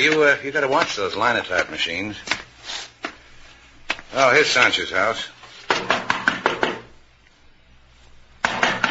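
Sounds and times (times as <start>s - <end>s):
speech: 0.0s - 2.9s, 4.1s - 6.1s
sharp loud knocking on a door: 5.7s - 6.9s.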